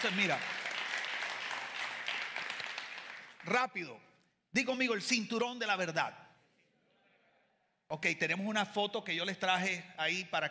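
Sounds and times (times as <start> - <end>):
speech: 0.0 - 0.6, 3.4 - 6.2, 7.9 - 10.4
congregation clapping during a church service: 0.0 - 3.9.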